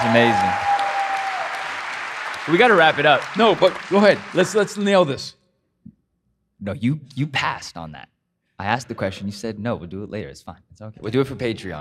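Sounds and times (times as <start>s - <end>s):
speech: 0.0s - 0.6s, 2.4s - 5.4s, 6.6s - 11.7s
group applauding: 0.0s - 5.2s.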